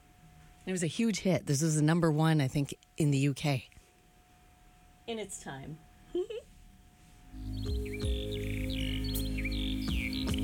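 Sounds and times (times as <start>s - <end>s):
speech: 0.7s - 3.8s, 5.1s - 6.4s
real bird chirps and trills recorded in a song: 7.4s - 10.4s
steady sustained musical backing of a song: 7.4s - 10.4s.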